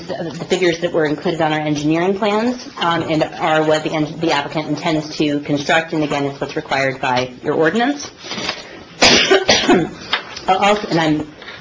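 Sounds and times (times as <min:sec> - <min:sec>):
speech: 0:00.1 - 0:08.6, 0:09.3 - 0:11.4
harsh coughs: 0:09.0 - 0:10.0.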